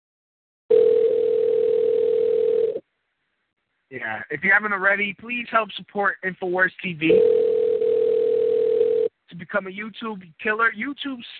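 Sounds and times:
telephone dial tone while placing a call: 0.7 - 2.8, 7.1 - 9.1
speech: 3.9 - 7.4, 9.4 - 11.3.

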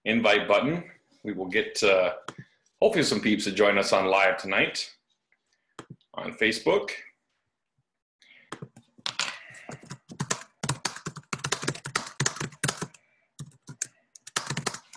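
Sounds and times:
speech: 0.0 - 5.0, 6.2 - 7.1
typing on a computer keyboard: 9.7 - 14.9.

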